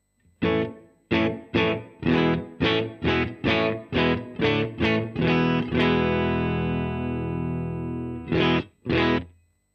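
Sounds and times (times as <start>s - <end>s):
distorted electric guitar through an amp simulator with room reverb playing chord stabs: 0.3s - 9.4s.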